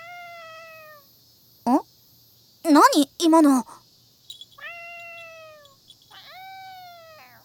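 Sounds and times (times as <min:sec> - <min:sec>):
cat meowing: 0:00.0 - 0:01.0, 0:04.6 - 0:07.4
speech: 0:02.7 - 0:03.8.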